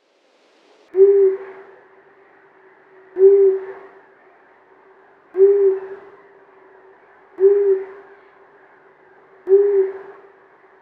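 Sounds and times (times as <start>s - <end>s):
male long-eared owl hooting: 1.0s - 1.8s, 3.2s - 4.0s, 5.4s - 6.3s, 7.4s - 8.2s, 9.5s - 10.3s.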